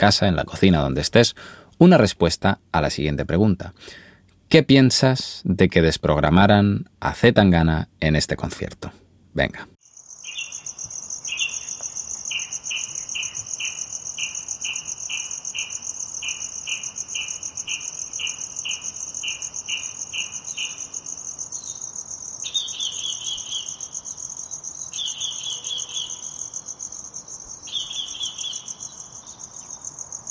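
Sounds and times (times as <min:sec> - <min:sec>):
speech: 0:00.0 - 0:09.7
crickets chirping: 0:09.8 - 0:30.2.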